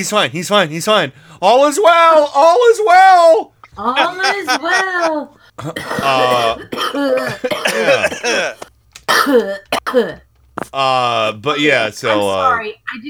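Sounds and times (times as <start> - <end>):
speech: 0.0 - 13.0
laughter: 3.6 - 8.7
person coughing and clearing throat: 5.6 - 10.2.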